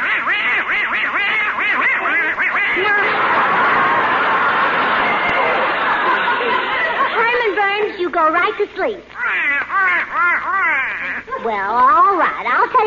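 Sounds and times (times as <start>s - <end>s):
little duck quacking: 0.0s - 3.1s, 9.2s - 11.3s
dense noisy wash of chattering: 0.0s - 12.8s
laughter: 1.7s - 8.6s
speech: 8.6s - 12.8s.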